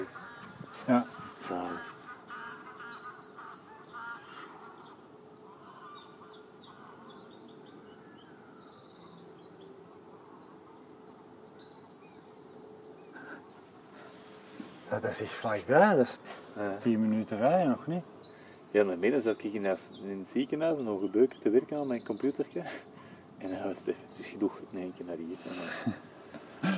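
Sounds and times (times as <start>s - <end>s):
geese honking outdoors: 0.0s - 4.9s
speech: 0.8s - 1.6s, 15.0s - 18.1s, 18.7s - 26.0s
laughter: 25.5s - 26.7s.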